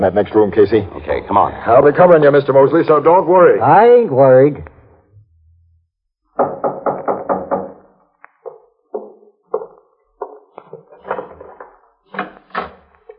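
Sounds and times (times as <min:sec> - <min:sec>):
speech: 0:00.0 - 0:04.7
knocking on a front door: 0:06.4 - 0:10.4.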